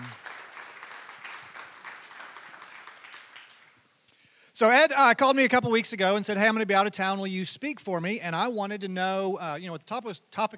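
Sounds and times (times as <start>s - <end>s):
room full of people applauding: 0.0s - 3.8s
speech: 4.6s - 10.5s.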